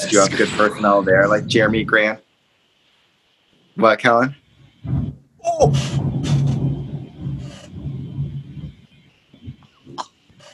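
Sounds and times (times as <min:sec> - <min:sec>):
loud deep thunder rumble: 0:00.0 - 0:02.2, 0:04.5 - 0:10.0
speech: 0:00.1 - 0:02.2, 0:03.8 - 0:06.1.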